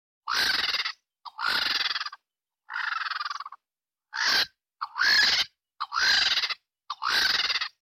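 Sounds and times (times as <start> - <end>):
lappet-faced vulture: 0.3 - 7.7.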